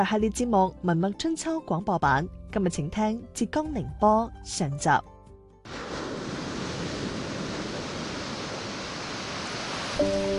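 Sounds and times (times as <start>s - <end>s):
speech: 0.0s - 5.8s
East China Sea tide waves washing into salt pans in Xiangshan: 5.7s - 10.3s.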